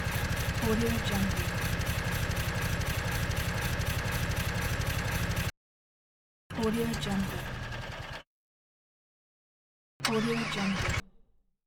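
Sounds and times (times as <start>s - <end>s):
sci-fi dieselpunk small machinery engine: 0.0s - 5.5s, 6.5s - 8.2s, 10.0s - 11.1s.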